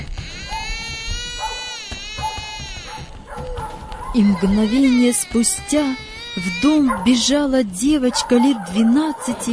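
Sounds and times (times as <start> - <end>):
child crying out in a loud sustained wail: 0.1 - 7.6
speech: 4.2 - 9.5.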